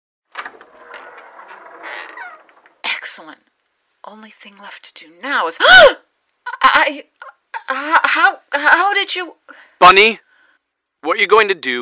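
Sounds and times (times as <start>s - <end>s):
front door being pulled open with clunk, scraping and creaking: 0.3s - 3.1s
speech: 3.2s - 6.0s, 6.8s - 10.2s, 11.0s - 11.8s.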